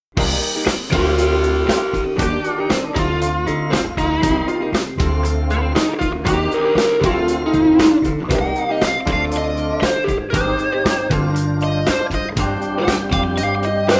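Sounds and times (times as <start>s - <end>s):
guitar solo intro: 0.2s - 13.9s.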